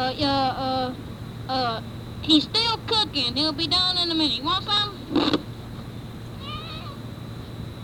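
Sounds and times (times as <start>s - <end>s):
speech: 0.1s - 5.4s
old cat meowing: 6.4s - 7.0s.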